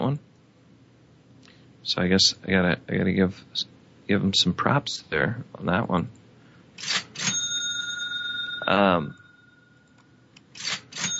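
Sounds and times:
speech: 0:01.9 - 0:06.2, 0:08.7 - 0:09.2
cash register mechanical clacks: 0:06.8 - 0:08.0, 0:10.6 - 0:11.1
cash register ringing bell tone: 0:06.8 - 0:09.8, 0:10.6 - 0:11.1.

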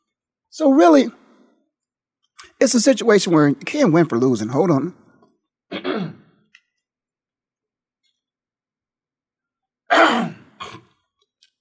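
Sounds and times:
speech: 0:00.5 - 0:01.2, 0:02.6 - 0:05.0
person clearing throat: 0:05.7 - 0:06.4, 0:09.9 - 0:11.0.

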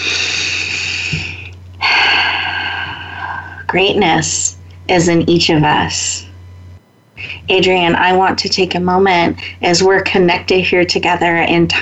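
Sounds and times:
breathing in: 0:00.0 - 0:03.6
low steady hum: 0:00.0 - 0:11.8
speech: 0:03.7 - 0:06.3, 0:07.5 - 0:11.8.

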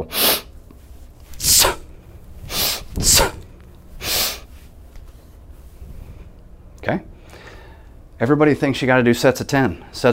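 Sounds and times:
speech: 0:00.0 - 0:00.3, 0:03.0 - 0:03.4, 0:06.9 - 0:07.1, 0:08.2 - 0:10.1
sharp breathy sniffs during kettlebell swings: 0:00.0 - 0:00.5, 0:01.4 - 0:01.9, 0:02.5 - 0:04.5.

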